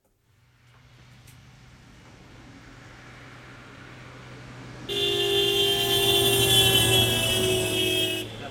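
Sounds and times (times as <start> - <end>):
street traffic rumble in Stockholm during a taxi disruption: 0.1 - 8.4
sustained car horn blast: 4.9 - 8.4.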